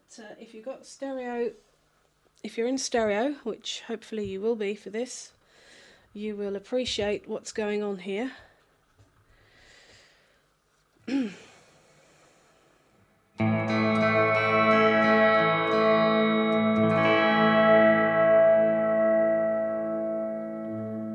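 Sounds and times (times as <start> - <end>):
speech: 0.1 - 1.7, 2.4 - 5.4, 6.1 - 8.5
pitch-bending guitar note: 13.4 - 21.1.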